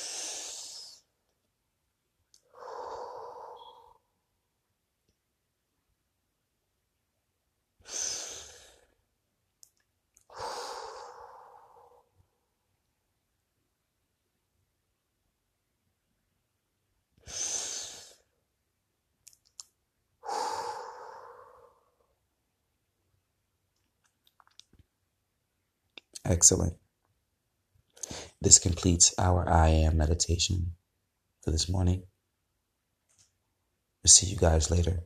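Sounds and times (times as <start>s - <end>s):
person taking deep breaths, inhaling and exhaling: 0.0s - 1.2s, 2.4s - 4.2s, 7.8s - 9.1s, 10.2s - 12.5s, 17.2s - 18.4s, 20.2s - 22.2s, 28.0s - 28.4s
speech: 26.3s - 26.8s, 28.4s - 30.8s, 31.4s - 32.1s, 34.0s - 35.0s.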